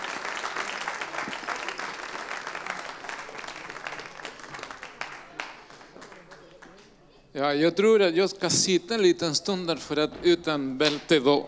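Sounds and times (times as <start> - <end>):
audience applause: 0.0 - 7.0
speech: 7.4 - 11.4.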